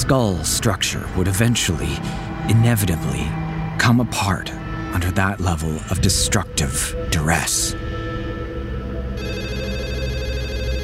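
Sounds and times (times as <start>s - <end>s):
speech: 0.1s - 8.0s
landline telephone ringing with a steady electronic trill: 9.2s - 10.8s.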